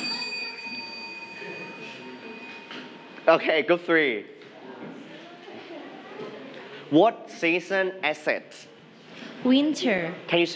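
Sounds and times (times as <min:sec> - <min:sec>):
bell ringing with a bright sustained metallic tone: 0:00.0 - 0:03.5
faint room noise: 0:00.0 - 0:10.5
speech: 0:03.3 - 0:04.4, 0:06.9 - 0:08.7, 0:09.4 - 0:10.5.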